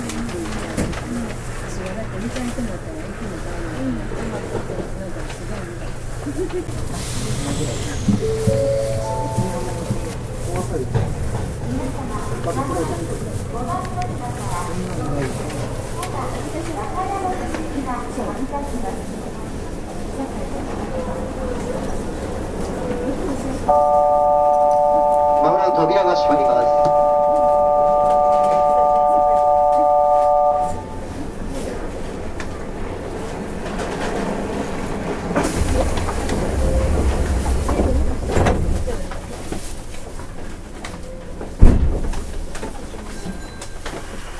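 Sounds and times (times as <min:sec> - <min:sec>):
people talking: 0:00.0 - 0:32.7, 0:35.4 - 0:39.6
commuter train running rumble: 0:00.0 - 0:44.3
sustained multi-note tone: 0:08.0 - 0:10.5, 0:23.7 - 0:31.0.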